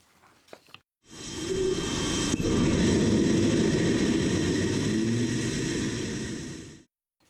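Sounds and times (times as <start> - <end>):
experimental rocket engine roaring during liftoff: 1.1 - 6.9.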